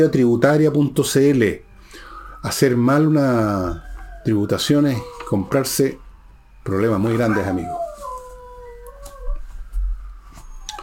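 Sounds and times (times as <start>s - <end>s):
speech: 0.0s - 1.7s, 2.4s - 6.0s, 6.6s - 7.8s
siren: 0.7s - 10.8s
dogs howling in response to a siren: 2.9s - 6.0s, 6.6s - 10.8s.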